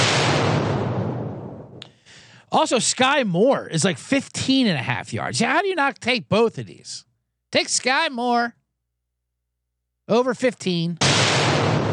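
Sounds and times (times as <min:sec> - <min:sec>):
bomb explosion sound effect: 0:00.0 - 0:01.8, 0:11.0 - 0:11.9
sharp crack: 0:00.0 - 0:02.0, 0:11.0 - 0:11.9
speech: 0:02.5 - 0:08.6, 0:10.1 - 0:11.1.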